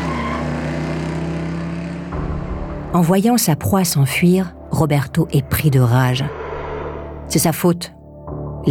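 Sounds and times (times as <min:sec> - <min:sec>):
car engine roaring as it speeds off: 0:00.0 - 0:02.9, 0:06.3 - 0:07.3
speech: 0:02.9 - 0:06.4, 0:07.3 - 0:08.0.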